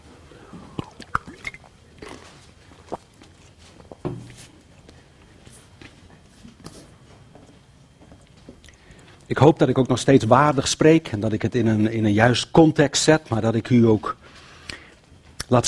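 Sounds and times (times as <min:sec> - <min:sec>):
quiet swallows: 0:00.2 - 0:04.0
faint slurps of water: 0:00.3 - 0:03.6
speech: 0:09.3 - 0:14.2, 0:15.5 - 0:15.6.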